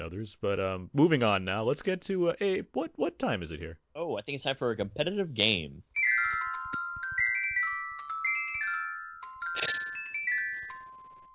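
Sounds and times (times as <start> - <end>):
speech: 0.0 - 5.9
ringing bells jingle: 6.0 - 11.3.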